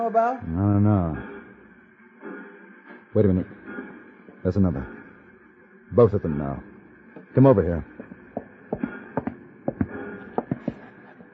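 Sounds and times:
speech: 0.0s - 1.3s, 3.1s - 3.6s, 4.4s - 5.0s, 5.9s - 6.7s, 7.4s - 7.9s
faint hum: 0.0s - 11.3s
horse hooves clip-clopping at a steady trot: 7.8s - 11.2s.

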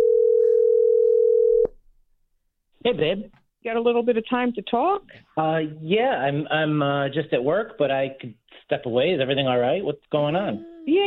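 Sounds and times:
single-pitched phone ringing tone: 0.0s - 1.7s
speech: 2.8s - 11.0s.

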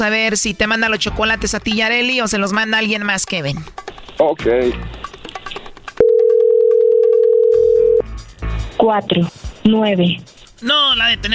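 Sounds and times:
speech: 0.0s - 5.0s, 8.8s - 11.3s
telephone dial tone while placing a call: 6.0s - 8.0s.

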